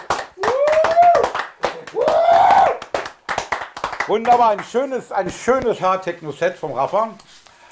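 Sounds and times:
many hands clapping: 0.0s - 4.8s
people whooping: 0.4s - 2.9s
speech: 4.1s - 7.3s.

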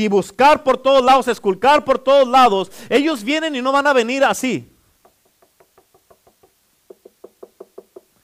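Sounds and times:
speech: 0.0s - 4.7s
knocking on a door: 6.9s - 8.1s.

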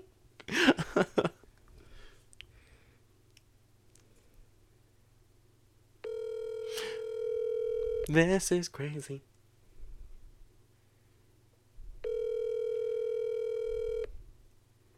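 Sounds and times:
telephone dial tone while a call is redialled: 6.0s - 8.1s, 12.0s - 14.1s
speech: 8.1s - 9.3s.

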